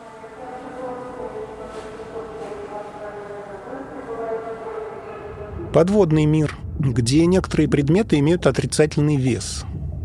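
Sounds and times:
echoing public-address announcement in a large railway station hall: 0.0 - 9.6
steady rumble: 5.2 - 10.0
speech: 5.7 - 9.8.

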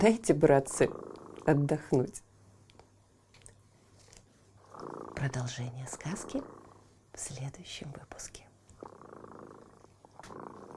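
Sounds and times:
cat purring: 0.0 - 2.2, 4.0 - 10.7
speech: 0.0 - 2.2, 5.2 - 6.6, 7.2 - 8.9.

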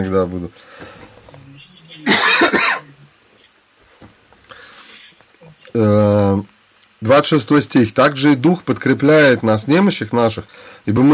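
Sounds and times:
speech: 0.0 - 1.0, 5.8 - 11.1
harsh cough: 2.0 - 2.9.

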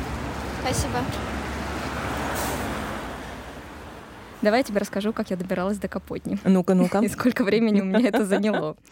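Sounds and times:
city bus engine rumble: 0.0 - 8.8
street noise in Moscow: 0.0 - 8.8
speech: 0.6 - 1.4, 4.4 - 8.8
city bus air brakes hissing at a stop in Moscow: 2.3 - 2.8
laughter: 6.8 - 8.8.

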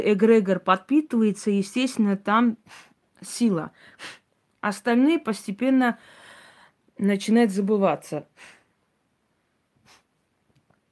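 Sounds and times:
speech: 0.0 - 6.2, 7.0 - 8.6
sharp nasal sniffs: 2.6 - 3.0, 9.8 - 10.1
faint nasal snuffles: 9.8 - 10.1.

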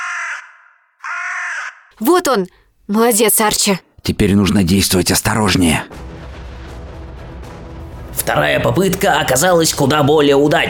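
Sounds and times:
crow cawing: 0.0 - 2.0
speech: 2.0 - 6.0, 8.2 - 10.6.

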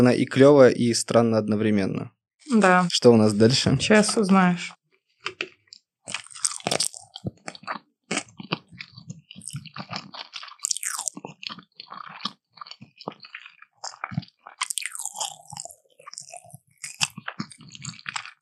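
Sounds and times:
speech: 0.0 - 5.4
wet crunchy chewing of sushi rolls topped with eel: 5.2 - 18.3.

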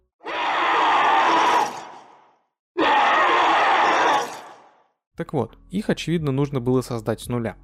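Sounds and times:
harsh raspy creature screams from a horror video game: 0.2 - 2.2, 2.8 - 4.7
speech: 5.2 - 7.6.

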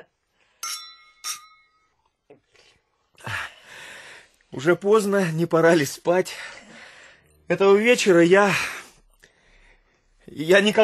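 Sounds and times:
glasses clinking in a toast: 0.6 - 2.0
speech: 4.6 - 6.6, 7.5 - 8.8, 10.3 - 10.8.

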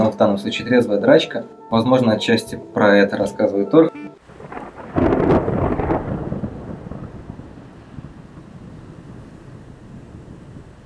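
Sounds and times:
speech: 0.1 - 4.0
rolling thunder: 4.2 - 10.8
steady rain-like hiss: 4.2 - 10.8.

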